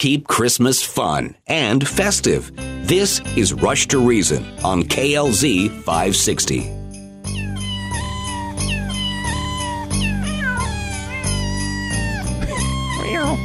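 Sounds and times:
speech: 0:00.0 - 0:06.8
bouncy musical backing: 0:01.9 - 0:13.4
cat meowing: 0:07.3 - 0:13.4.

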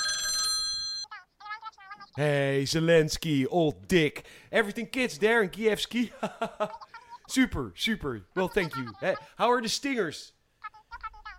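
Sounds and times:
bright electronic telephone ring: 0:00.0 - 0:01.2
speech: 0:02.2 - 0:10.4
laughter: 0:06.0 - 0:07.3.

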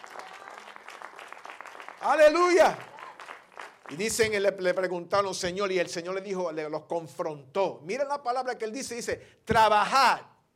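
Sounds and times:
crowd applauding: 0:00.0 - 0:04.6
speech: 0:02.0 - 0:02.9, 0:03.9 - 0:10.3.

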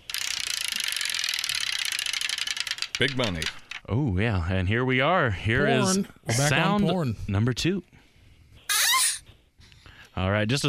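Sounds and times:
prize wheel spinning during a game segment: 0:00.0 - 0:03.8
speech: 0:03.0 - 0:08.0, 0:10.2 - 0:10.6.

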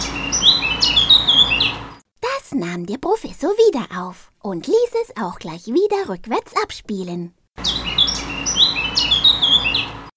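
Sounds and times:
blackbird scolding call: 0:00.0 - 0:02.0, 0:07.6 - 0:10.1
speech: 0:02.6 - 0:07.8.

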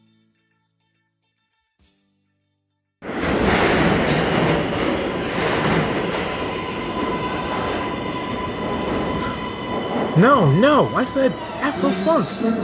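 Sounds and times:
train rumbling on rails: 0:03.0 - 0:12.6
speech: 0:10.2 - 0:12.6.

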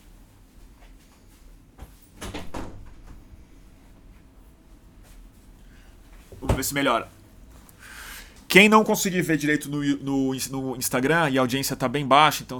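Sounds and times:
low steady room hum: 0:00.0 - 0:12.5
door opening with clicks and a scraping rattle: 0:01.8 - 0:07.8
speech: 0:06.6 - 0:07.2, 0:08.5 - 0:12.5.

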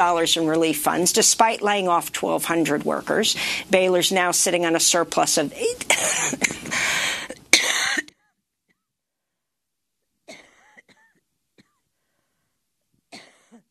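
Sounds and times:
speech: 0:00.0 - 0:07.0
breaths: 0:03.4 - 0:03.7, 0:06.6 - 0:07.4, 0:11.9 - 0:12.6
person coughing: 0:05.9 - 0:08.3, 0:13.2 - 0:13.6.

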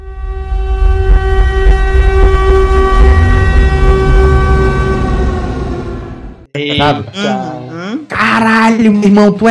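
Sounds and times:
video game air raid siren: 0:00.0 - 0:06.5
speech: 0:08.7 - 0:09.5.

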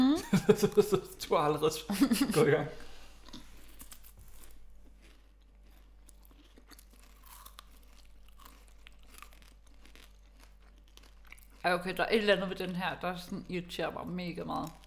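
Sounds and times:
laughter: 0:00.0 - 0:01.2, 0:01.9 - 0:02.6
speech: 0:00.4 - 0:02.9, 0:11.6 - 0:14.8
person chewing a crunchy chocolate rum-ball pastry: 0:03.2 - 0:11.9, 0:14.0 - 0:14.8.

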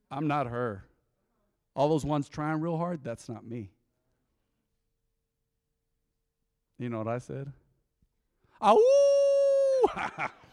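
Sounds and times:
speech: 0:00.1 - 0:00.9, 0:01.8 - 0:03.8, 0:06.8 - 0:07.6, 0:08.6 - 0:09.1, 0:09.8 - 0:10.4
man imitating a howl at the moon: 0:08.6 - 0:10.3.

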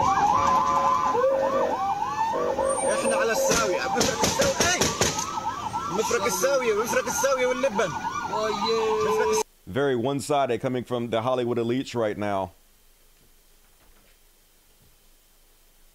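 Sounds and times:
ambulance siren wailing: 0:00.0 - 0:09.4
speech: 0:06.2 - 0:12.6.

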